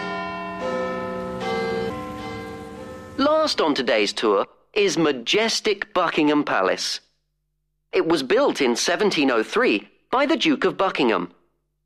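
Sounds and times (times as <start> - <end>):
14-ton clock tower bell chiming the hour: 0.0 - 4.2
speech: 3.2 - 7.0, 7.9 - 11.4.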